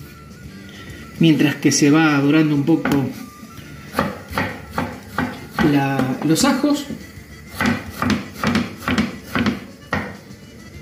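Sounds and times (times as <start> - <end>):
speech: 1.2 - 3.2, 5.6 - 8.2
knife chopping fresh tomatoes into small cubes: 3.9 - 10.3.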